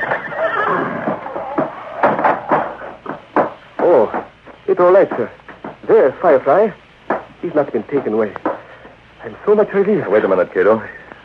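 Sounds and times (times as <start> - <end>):
horse neighing in a stable: 0.0 - 2.8
speech: 4.8 - 6.8, 7.4 - 8.5, 9.2 - 11.0.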